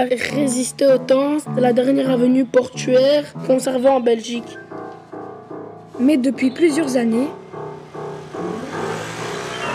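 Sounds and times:
speech: 0:00.0 - 0:04.6, 0:06.0 - 0:07.4
car engine humming while driving on a cobbled port avenue in Belgium: 0:07.3 - 0:09.7.

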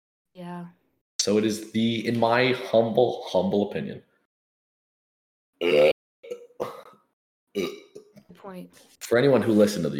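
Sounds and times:
speech: 0:00.4 - 0:04.1, 0:05.6 - 0:05.9, 0:08.4 - 0:09.9
person burping into the microphone: 0:05.6 - 0:08.2
throaty vocal noises: 0:05.6 - 0:08.2.

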